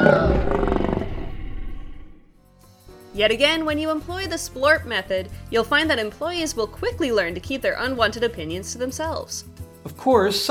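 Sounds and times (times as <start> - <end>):
lion roaring: 0.0 - 2.4
speech: 3.2 - 10.4.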